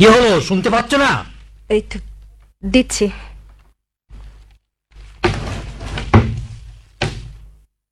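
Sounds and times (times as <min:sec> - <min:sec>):
speech: 0:00.0 - 0:03.3
door thuds and knocks: 0:05.2 - 0:07.5.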